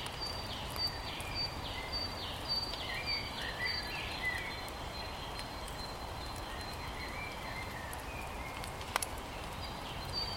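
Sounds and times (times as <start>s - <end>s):
birds calling with short bright notes and chirps: 0.0s - 10.3s
spring rain pattering softly outdoors in the Rhymney Valley in South Wales: 0.0s - 10.3s.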